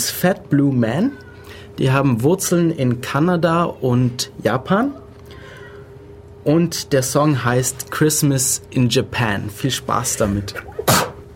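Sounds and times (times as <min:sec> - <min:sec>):
speech: 0:00.2 - 0:05.0, 0:06.4 - 0:11.0
sharp sneeze: 0:10.8 - 0:11.2.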